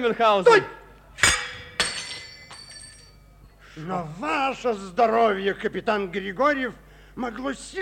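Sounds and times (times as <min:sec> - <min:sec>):
speech: 0:00.0 - 0:01.3, 0:03.8 - 0:07.7
glass goblet holding a poisoned drink smashing: 0:01.2 - 0:03.3.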